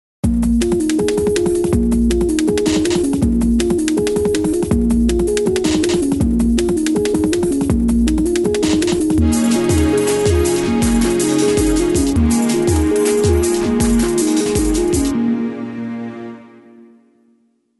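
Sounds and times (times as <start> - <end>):
drum and bass music: 0.2 - 15.7.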